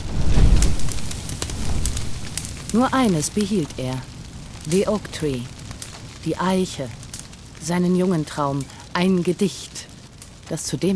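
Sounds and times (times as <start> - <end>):
large fire crackling with burning manuscripts: 0.0 - 10.9
sharp irregular pops and snaps of burning manuscripts: 0.3 - 9.0
speech: 2.7 - 5.6, 6.2 - 7.0, 7.6 - 9.9, 10.5 - 10.9.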